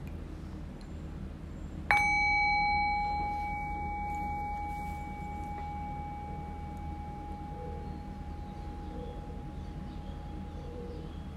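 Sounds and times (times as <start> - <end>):
quiet hum: 0.0 - 11.3
meditation bell struck: 1.9 - 10.8.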